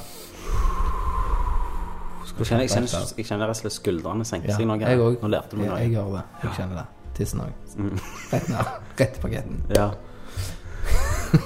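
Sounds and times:
slow breath in through the nose and out through the mouth: 0.0s - 2.4s, 10.0s - 10.9s
speech: 2.4s - 10.6s
laughter: 7.8s - 9.0s, 10.8s - 11.4s.

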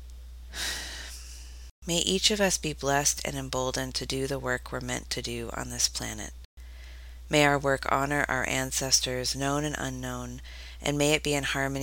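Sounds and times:
low steady hum: 0.0s - 11.8s
deep breath inhale during an opening invocation: 0.6s - 1.3s, 6.6s - 7.2s
speech: 1.8s - 6.4s, 7.3s - 11.8s.

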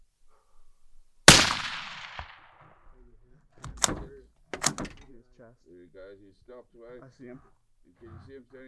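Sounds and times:
5.56 rifle shot fired at an impala: 1.3s - 2.6s
speech: 5.8s - 8.6s.

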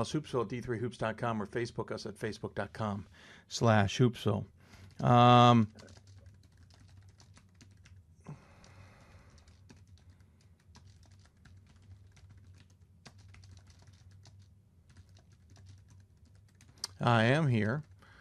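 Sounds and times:
speech: 0.0s - 6.0s, 17.0s - 17.9s
low hum: 0.0s - 18.1s
typing on a computer keyboard: 4.7s - 18.0s.

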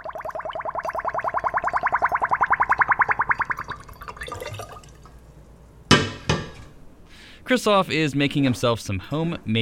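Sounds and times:
water draining through a funnel with bubbly glugs: 0.0s - 5.2s
speech: 7.5s - 9.6s.

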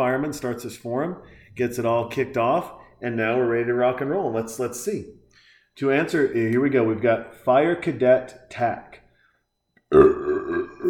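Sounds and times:
speech: 0.0s - 5.2s, 5.8s - 9.0s, 9.9s - 10.8s
loud drawn-out burp: 9.8s - 10.8s.

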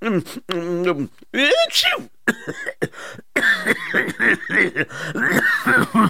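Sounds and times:
man talking: 0.0s - 2.2s
man clearing throat: 2.3s - 6.0s
man coughing: 2.3s - 6.0s.

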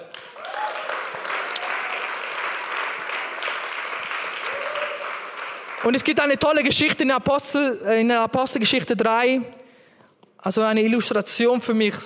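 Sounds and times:
audience applauding: 0.0s - 6.6s
faint voices and cheers: 4.4s - 5.1s
speech: 5.8s - 9.6s, 10.4s - 12.0s.

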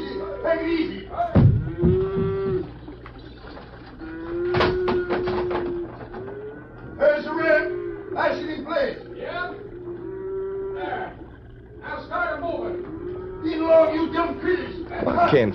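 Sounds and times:
cattle mooing on a bridge: 0.0s - 15.5s
clattering and shuffling of cattle on a bridge: 1.4s - 7.0s.

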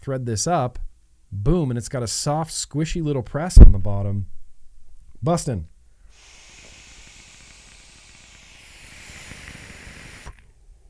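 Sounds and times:
speech: 0.0s - 4.4s, 5.2s - 5.7s
vape coil hissing and crackling during an inhale: 6.2s - 10.6s.

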